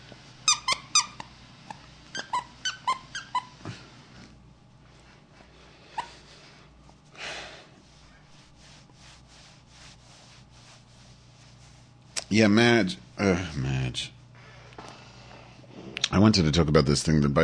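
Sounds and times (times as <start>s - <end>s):
dog squeaking: 0.4s - 3.6s
speech: 12.3s - 14.2s, 16.1s - 17.4s.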